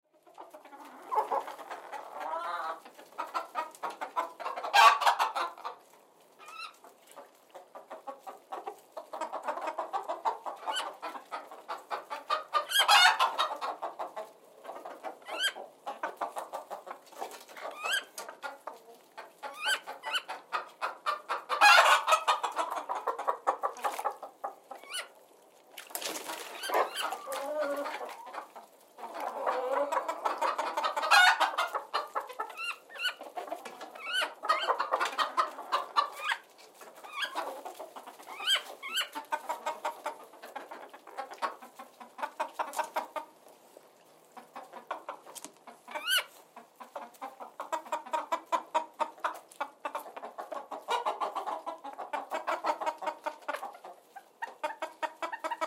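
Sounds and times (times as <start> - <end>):
chickens in a hen house on a farm: 0.1 - 55.6.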